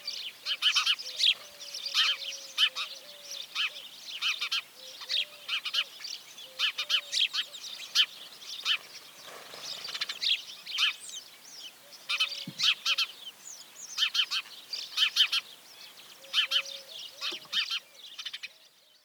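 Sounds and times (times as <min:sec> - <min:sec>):
House sparrow Passer domesticus loud clipped chirps and overlapping chatter: 0:00.0 - 0:19.0.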